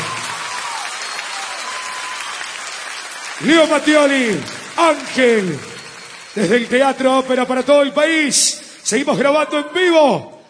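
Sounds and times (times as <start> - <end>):
audience applause at a live recording in a theatre: 0.0 - 8.2
speech: 3.4 - 5.7, 6.4 - 10.4.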